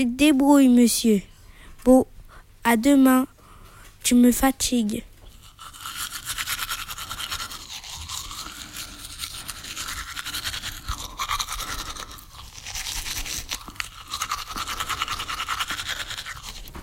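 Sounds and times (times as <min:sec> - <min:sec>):
speech: 0:00.0 - 0:03.3, 0:04.0 - 0:05.1
toothbrush scrubbing against teeth: 0:05.3 - 0:16.8.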